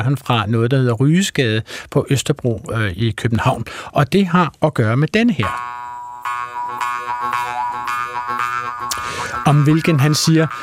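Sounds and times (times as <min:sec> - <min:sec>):
speech: 0:00.0 - 0:05.8, 0:09.5 - 0:10.6
jaw harp twanging with buzzing drone: 0:05.4 - 0:10.6.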